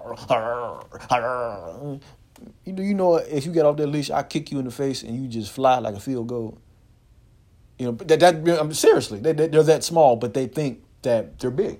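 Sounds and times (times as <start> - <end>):
voice imitating a Chihuahua snarling: 0.0 - 2.0
speech: 0.1 - 6.7, 7.8 - 11.7.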